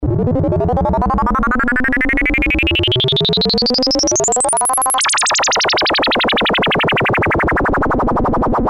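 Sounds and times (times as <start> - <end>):
sine wave with LFO: 0.1 - 8.6.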